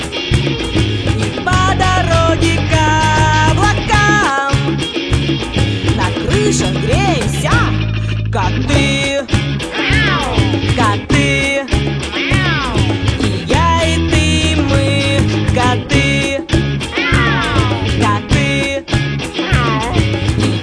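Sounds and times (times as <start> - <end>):
loud busy music with a steady beat: 0.0 - 20.6
cat meowing: 9.7 - 10.6, 12.1 - 12.9, 16.9 - 17.8, 19.4 - 20.1.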